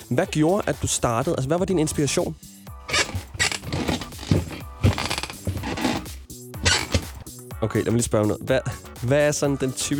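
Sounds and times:
speech: 0.1s - 2.5s, 7.6s - 9.9s
person making rasping creaking noises with their voice: 2.9s - 7.2s.

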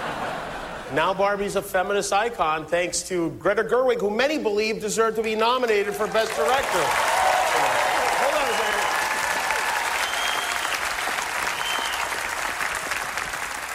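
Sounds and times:
laughter: 0.0s - 0.9s
speech: 0.9s - 7.4s
large audience applause: 5.7s - 13.7s.

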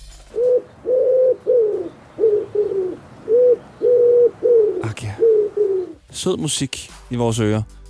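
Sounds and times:
pigeon cooing: 0.3s - 6.0s
speech: 6.2s - 7.8s.

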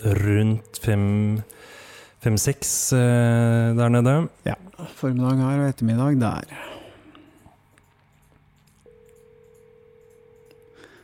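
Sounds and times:
speech: 0.0s - 6.8s
phone ringback tone through a handset: 8.9s - 11.0s.

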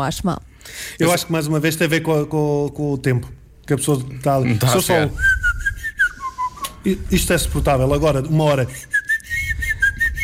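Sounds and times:
speech: 0.0s - 5.4s, 6.8s - 9.0s
person whistling a short wavering tune: 5.1s - 6.8s, 8.7s - 10.2s.

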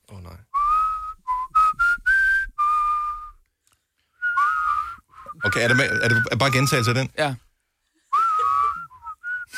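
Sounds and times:
person whistling a short melody: 0.6s - 3.4s, 4.2s - 6.9s, 8.1s - 9.5s
speech: 5.5s - 7.5s.

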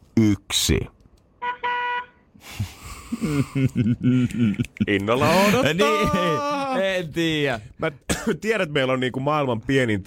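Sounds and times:
speech: 0.3s - 1.0s, 3.2s - 10.0s
car horn honks: 1.4s - 2.3s
laughter: 2.4s - 7.0s.

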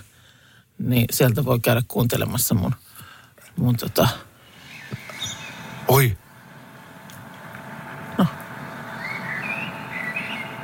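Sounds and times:
speech: 0.8s - 2.8s, 3.6s - 4.3s, 5.9s - 6.2s
common blackbird singing: 4.5s - 6.0s, 8.7s - 10.6s.

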